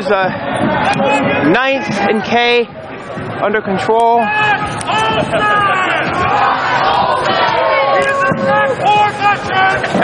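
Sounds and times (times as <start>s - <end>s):
large crowd of protesters shouting and chanting outdoors: 0.0s - 10.0s
speech: 0.0s - 10.0s
higher yells from protesters: 4.2s - 9.9s.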